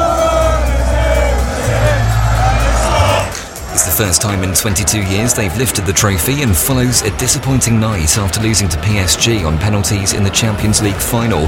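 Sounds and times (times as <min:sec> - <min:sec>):
huge outdoor crowd of football fans cheering: 0:00.0 - 0:11.4
speech: 0:04.0 - 0:11.4.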